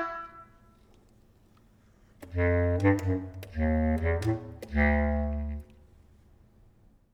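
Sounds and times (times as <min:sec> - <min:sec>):
melodies: 0:02.2 - 0:05.7.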